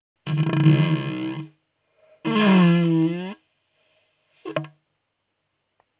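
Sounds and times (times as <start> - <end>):
fart in a haunted house: 0.2 - 1.6, 2.3 - 3.4.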